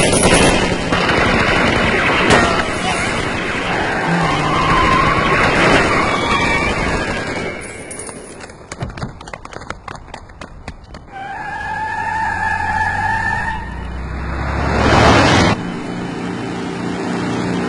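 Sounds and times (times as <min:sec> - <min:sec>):
rapid gunfire: 0:00.0 - 0:07.6
vehicle engine rumbling: 0:00.0 - 0:17.6.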